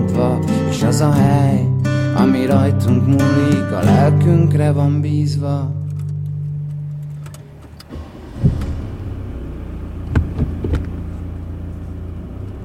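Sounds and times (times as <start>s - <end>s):
speech: 1.0s - 5.8s
car engine hum at slow even pace: 3.8s - 12.6s
road rumble: 5.7s - 12.6s
soft bumps and light rattles inside the car cabin: 5.8s - 12.6s.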